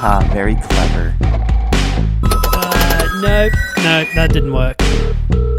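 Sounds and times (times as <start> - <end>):
speech: 0.0 - 2.2, 3.2 - 5.4
loud electronic telephone ringtone with chirpy tones: 2.3 - 3.8.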